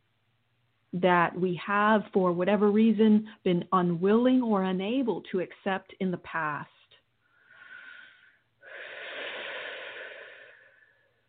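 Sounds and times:
speech: 0.9s - 6.8s
deep breathing: 7.2s - 11.2s.

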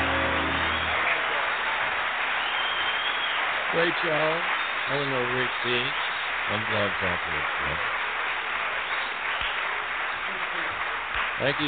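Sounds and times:
audience clapping: 0.0s - 11.6s
speech: 3.7s - 8.0s, 11.4s - 11.6s.

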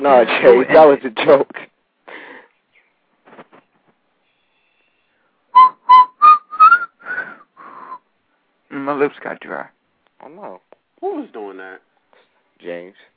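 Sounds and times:
speech: 0.0s - 1.7s, 8.7s - 11.9s, 12.6s - 13.1s
person whistling a short tune: 5.6s - 8.0s.

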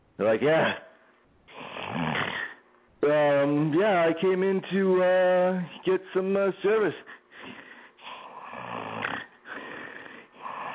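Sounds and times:
speech: 0.2s - 0.9s, 3.0s - 7.1s
man making rasping snore-like noises imitating snoring while awake: 1.5s - 2.6s, 8.0s - 10.7s.

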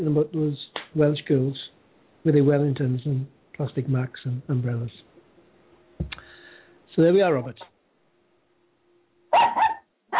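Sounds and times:
speech: 0.0s - 5.1s, 7.0s - 7.7s
dog barking: 9.3s - 10.1s.

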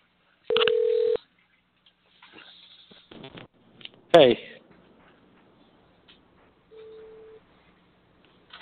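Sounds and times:
loud electronic telephone keypad tone: 0.5s - 1.2s
speech: 4.2s - 4.5s.

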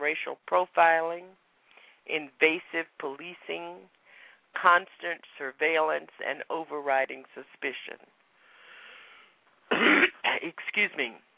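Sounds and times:
speech: 0.1s - 1.5s, 2.1s - 8.2s, 10.4s - 11.3s
person coughing on the phone: 9.7s - 10.6s.

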